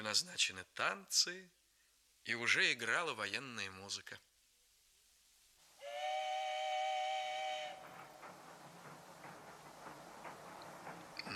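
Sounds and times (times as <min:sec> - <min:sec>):
speech: 0:00.0 - 0:01.6, 0:02.2 - 0:04.3
steam train whistle blast: 0:05.8 - 0:07.9
moving steam train chuffing and clatter: 0:05.8 - 0:11.3.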